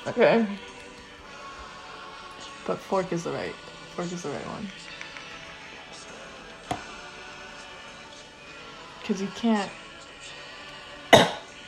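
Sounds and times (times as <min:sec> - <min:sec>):
speech: 0:00.0 - 0:00.8, 0:02.6 - 0:04.8, 0:09.1 - 0:09.8
person coughing: 0:11.1 - 0:11.5.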